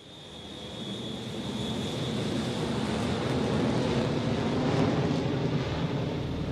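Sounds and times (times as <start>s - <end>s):
faint high whine of airplane engine: 0.0s - 3.2s
airplane engine roar passing overhead: 0.0s - 6.5s.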